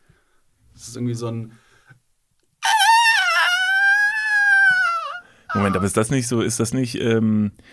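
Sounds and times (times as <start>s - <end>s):
speech: 0.8s - 1.7s, 5.5s - 7.7s
person imitating a whale call with a long high tonal wail: 2.6s - 6.0s.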